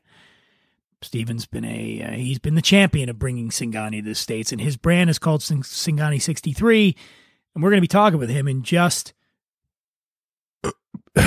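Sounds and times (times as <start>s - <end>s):
speech: 1.0s - 9.2s
loud burp: 10.6s - 11.2s
short throaty noises: 10.6s - 11.2s.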